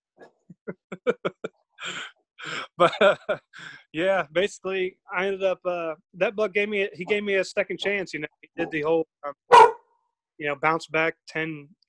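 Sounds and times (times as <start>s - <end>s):
laughter: 0.5s - 3.7s
speech: 2.8s - 9.7s, 10.4s - 11.8s
dogs barking excitedly: 9.5s - 9.9s.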